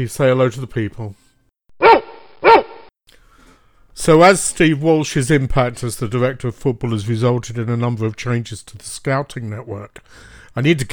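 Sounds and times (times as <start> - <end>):
speech: 0.0 - 1.2, 4.0 - 10.9
dog barking: 1.8 - 2.9.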